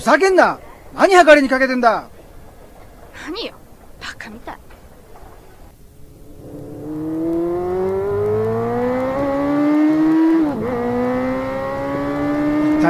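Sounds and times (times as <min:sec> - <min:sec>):
speech: 0:00.0 - 0:02.2, 0:03.2 - 0:03.6
motorcycle engine roaring at high revs ridden toward the Tama River embankment: 0:05.9 - 0:12.8.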